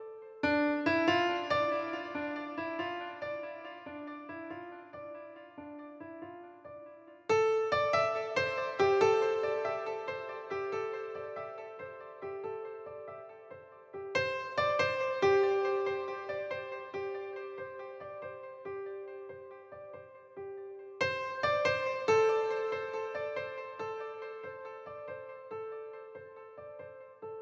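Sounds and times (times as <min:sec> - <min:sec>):
piano melody in D minor: 0:00.0 - 0:27.4.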